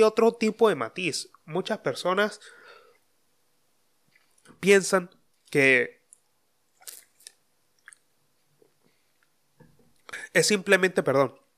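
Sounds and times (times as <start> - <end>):
speech: 0.0 - 2.6, 4.6 - 6.0, 10.3 - 11.4
person sipping and gulping water: 6.8 - 8.1.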